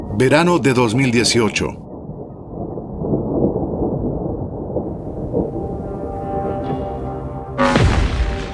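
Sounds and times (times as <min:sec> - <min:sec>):
speech: 0:00.2 - 0:01.9
rolling thunder from an approaching storm: 0:01.8 - 0:08.5.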